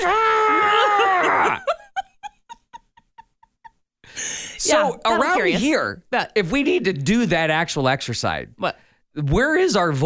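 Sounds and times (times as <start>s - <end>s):
person screaming: 0.0s - 1.7s
breathy panting laughter: 1.6s - 3.8s
speech: 4.7s - 10.0s.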